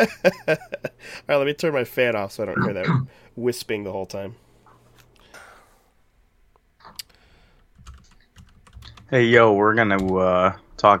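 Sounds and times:
speech: 0.0 - 4.4, 9.1 - 10.9
typing on a computer keyboard: 7.7 - 9.1, 9.9 - 10.2.

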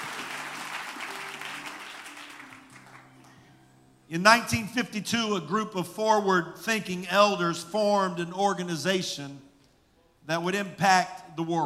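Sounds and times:
large group applauding: 0.0 - 3.4
speech: 4.1 - 9.5, 10.3 - 11.6.

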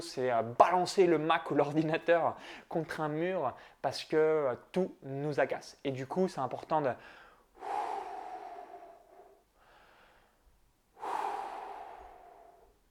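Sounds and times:
speech: 0.0 - 7.8
slow deep relaxation breaths: 7.0 - 12.8.

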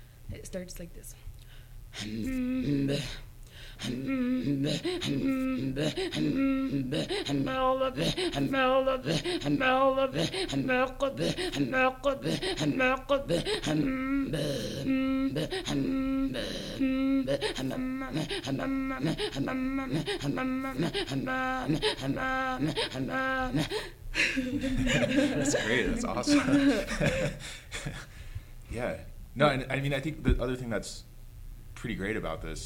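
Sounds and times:
speech: 0.3 - 1.3, 1.9 - 28.1, 28.7 - 31.1, 31.8 - 32.6
Inuit throat singing in Kangirsuk: 2.0 - 23.9
laughter: 17.4 - 28.0.

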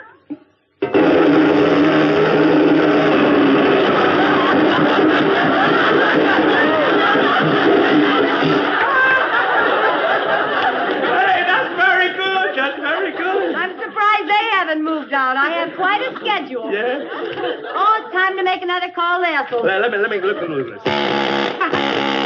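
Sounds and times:
voice imitating a riveter's hammer: 0.0 - 5.4, 20.8 - 22.2
laughter: 0.8 - 18.3, 19.5 - 22.2.

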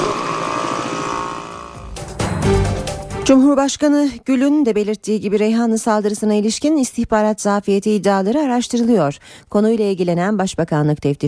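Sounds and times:
helicopter engine drone during reconnaissance in Turkey: 0.0 - 2.1
speech: 3.3 - 11.2.

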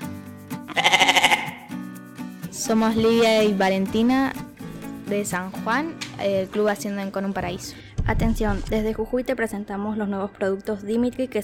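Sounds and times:
steady musical backing: 0.0 - 9.6
goat bleating: 0.7 - 1.7
speech: 2.6 - 4.4, 5.1 - 11.4.

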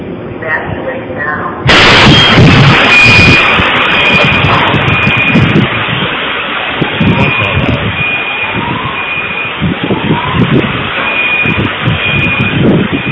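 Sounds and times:
loud explosion with sustained roaring rumble in a played recording: 1.6 - 13.1.

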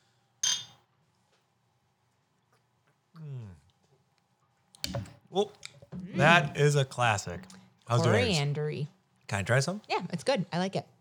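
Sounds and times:
beer glasses clinking in a toast: 0.4 - 0.8
speech: 5.3 - 11.0.

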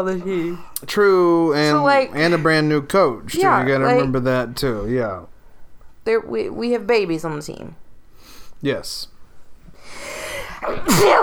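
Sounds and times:
speech: 0.0 - 5.3, 6.0 - 7.8, 8.6 - 9.1, 9.9 - 11.2
person sneezing: 10.6 - 11.2.

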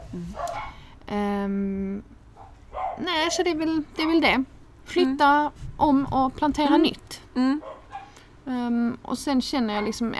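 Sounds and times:
speech: 0.1 - 0.5, 1.1 - 2.2, 3.0 - 7.8, 8.4 - 10.1
dog barking: 0.4 - 0.8, 2.4 - 3.4, 7.6 - 8.2, 9.8 - 10.0.

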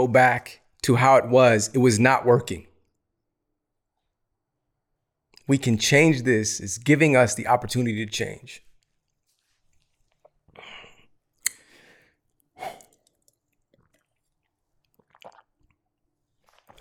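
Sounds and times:
speech: 0.0 - 2.7, 5.5 - 8.7
sipping and swallowing from a glass: 8.8 - 16.7
faint soft mouth sounds: 9.7 - 15.8.

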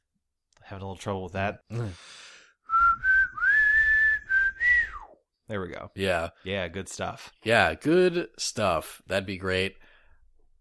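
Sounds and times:
speech: 0.7 - 2.2, 5.5 - 9.9
whistled video game theme melody: 2.7 - 5.2.

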